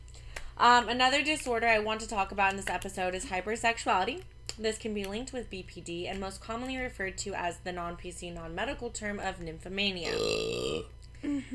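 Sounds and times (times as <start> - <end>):
speech: 0.6 - 11.5
loud burp: 10.0 - 10.9.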